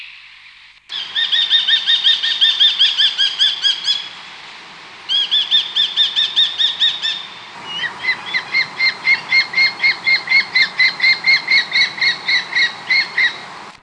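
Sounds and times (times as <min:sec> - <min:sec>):
Australian hobby calls: 0:00.9 - 0:13.8.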